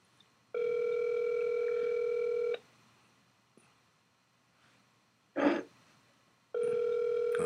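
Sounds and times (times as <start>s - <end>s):
electronic ringback tone on an unanswered outgoing phone call: 0.6s - 2.6s, 6.6s - 7.4s
person clearing throat: 5.4s - 5.7s.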